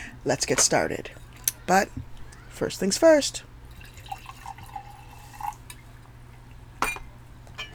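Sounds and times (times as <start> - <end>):
speech: 0.2 - 3.5
red wine pouring into a glass: 1.1 - 6.6
sharp glassy tap: 6.8 - 7.7.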